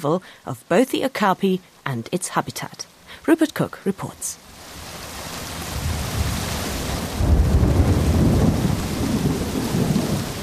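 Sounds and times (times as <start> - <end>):
speech: 0.0 - 4.4
torrential rain in tropical forest: 4.4 - 10.4
deep rumble of thunder: 5.5 - 10.4.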